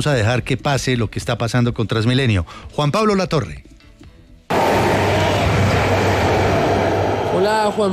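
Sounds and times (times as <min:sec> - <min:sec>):
speech: 0:00.0 - 0:03.7, 0:07.4 - 0:07.9
Line 1 metro trains running on an elevated line in Bosa, Bogotá: 0:04.5 - 0:07.9
low hum: 0:04.5 - 0:07.9.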